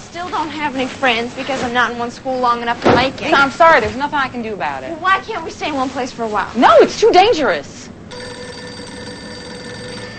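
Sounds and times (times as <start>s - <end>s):
speech: 0.2s - 7.8s
telephone ringing with an electronic tone: 8.1s - 10.1s.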